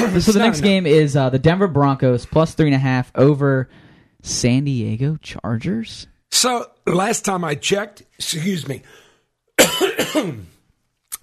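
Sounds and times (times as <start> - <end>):
speech: 0.0 - 9.0, 9.6 - 10.5
person coughing: 9.6 - 10.6.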